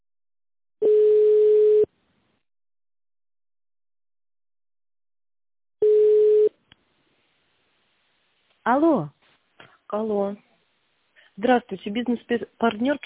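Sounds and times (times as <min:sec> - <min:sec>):
telephone line tone beeps while a call is put through to a secretary: 0:00.8 - 0:01.9, 0:05.8 - 0:06.5
speech: 0:08.7 - 0:09.2, 0:09.9 - 0:10.5, 0:11.4 - 0:13.0.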